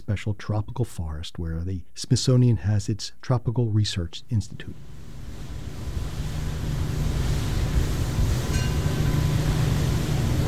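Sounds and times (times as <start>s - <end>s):
speech: 0.1s - 5.0s
small boat motor rumbling: 4.8s - 10.4s
waves splashing: 4.8s - 10.4s
wind buffeting the microphone: 5.2s - 10.4s.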